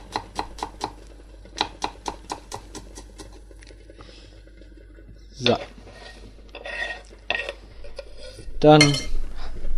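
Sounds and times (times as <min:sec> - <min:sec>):
knife finely chopping food: 0:00.0 - 0:01.0, 0:01.6 - 0:03.4
speech: 0:05.4 - 0:05.8, 0:08.6 - 0:09.1.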